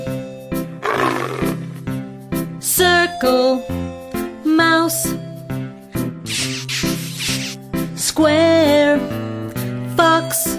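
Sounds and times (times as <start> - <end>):
tiger roaring: 0.8 - 1.7
bright steady musical backing: 2.0 - 10.5
speech: 3.2 - 3.8, 8.2 - 9.1.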